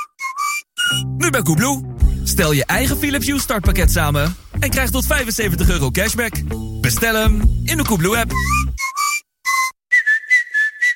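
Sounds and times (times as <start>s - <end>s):
person whistling a short tune: 0.0s - 1.2s, 8.3s - 10.9s
speech: 0.9s - 8.7s.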